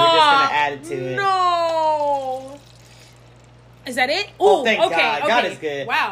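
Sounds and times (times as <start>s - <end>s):
low steady hum: 0.0s - 6.0s
speech: 0.7s - 1.5s, 3.9s - 6.0s
drink pouring from a bottle: 1.7s - 3.9s.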